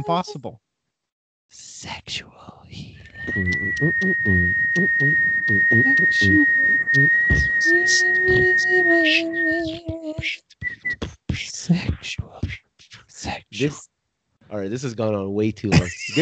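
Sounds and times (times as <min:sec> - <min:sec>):
speech: 0:00.0 - 0:00.7, 0:01.5 - 0:12.6, 0:13.2 - 0:13.9, 0:14.5 - 0:16.1
person whistling while laughing: 0:03.0 - 0:11.2
voices laughing and chattering: 0:15.7 - 0:16.1.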